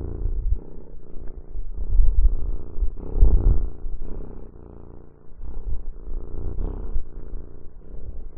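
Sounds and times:
cat purring: 0:00.0 - 0:08.3.

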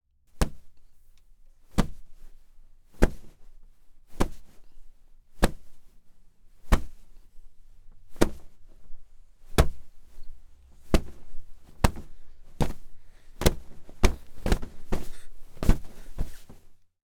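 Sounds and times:
pillow body hits: 0:00.4 - 0:00.7, 0:01.7 - 0:02.3, 0:03.0 - 0:03.5, 0:04.1 - 0:04.6, 0:05.4 - 0:05.9, 0:06.6 - 0:07.0, 0:07.9 - 0:16.8.

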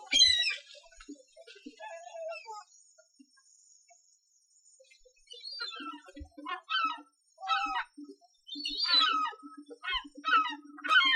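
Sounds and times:
gull cries in short yelping bursts: 0:05.5 - 0:08.0, 0:08.6 - 0:11.1.

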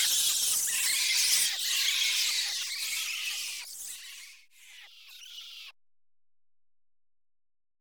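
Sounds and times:
bats chattering: 0:00.0 - 0:05.7.

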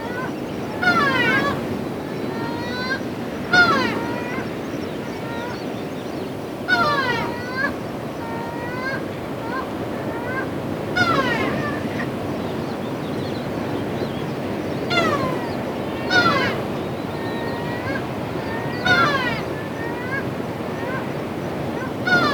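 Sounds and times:
gulls crying in mewing calls in Oman: 0:00.0 - 0:22.3.

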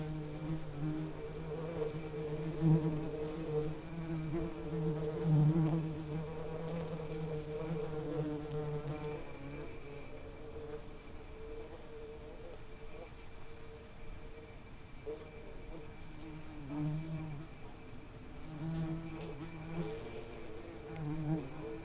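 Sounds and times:
wasp buzzing in summer: 0:00.0 - 0:10.1, 0:18.4 - 0:21.8
soft background hiss: 0:00.0 - 0:21.8.

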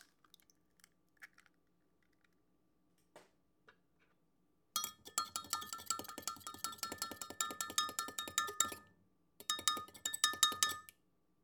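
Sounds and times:
eggs being beaten: 0:04.8 - 0:10.9.

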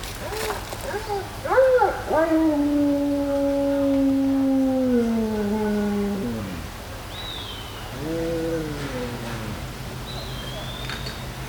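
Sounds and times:
dog howling in woods: 0:00.9 - 0:06.8, 0:07.9 - 0:10.2.

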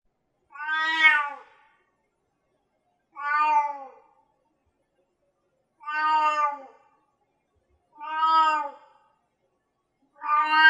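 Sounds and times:
cat meowing plaintively: 0:00.5 - 0:01.5, 0:03.2 - 0:04.0, 0:05.8 - 0:06.8, 0:08.0 - 0:08.9, 0:10.2 - 0:10.6.

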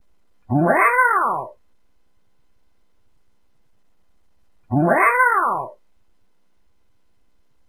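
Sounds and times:
cat meowing: 0:00.5 - 0:01.6, 0:04.8 - 0:05.8.

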